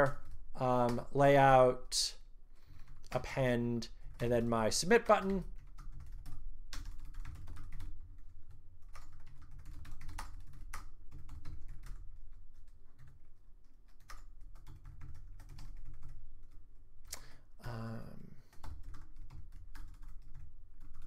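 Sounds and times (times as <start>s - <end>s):
speech: 0.0s - 2.2s, 3.1s - 5.5s
person typing code on a computer keyboard: 5.0s - 17.3s, 18.5s - 21.0s.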